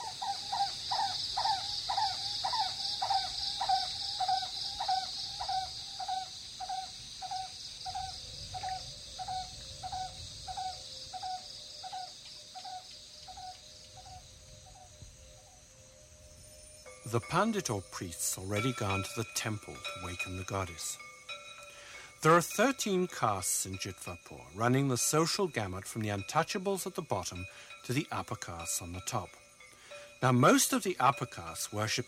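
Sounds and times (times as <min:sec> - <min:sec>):
crows cawing as they fly past: 0:00.0 - 0:08.7
constant high insect drone: 0:00.0 - 0:32.0
speech: 0:17.1 - 0:21.0, 0:22.2 - 0:29.4, 0:30.2 - 0:32.0.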